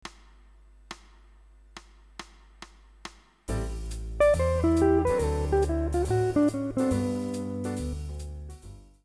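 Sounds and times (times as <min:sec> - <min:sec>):
jazz ii V I licks: 0:03.5 - 0:08.7.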